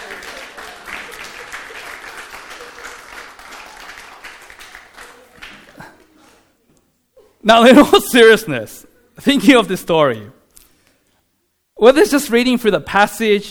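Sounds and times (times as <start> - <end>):
audience applause: 0.0 - 5.8
speech: 7.4 - 10.4, 11.8 - 13.4.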